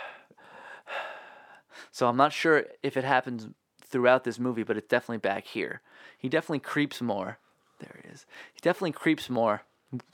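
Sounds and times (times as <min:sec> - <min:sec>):
heavy breathing from a film soundtrack: 0:00.0 - 0:02.0, 0:05.8 - 0:06.2, 0:07.6 - 0:08.6
speech: 0:02.0 - 0:10.1.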